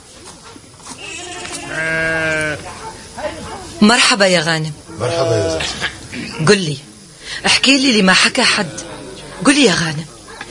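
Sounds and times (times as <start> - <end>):
sheep bleating: 1.0 - 2.6, 5.0 - 5.8
speech: 3.8 - 10.1.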